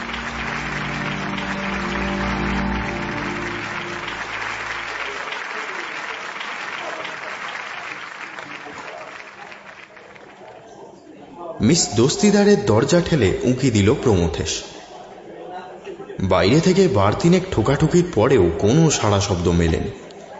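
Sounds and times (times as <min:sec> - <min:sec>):
applause from a standing theatre audience: 0:00.0 - 0:10.8
speech: 0:11.6 - 0:14.7, 0:16.2 - 0:20.0.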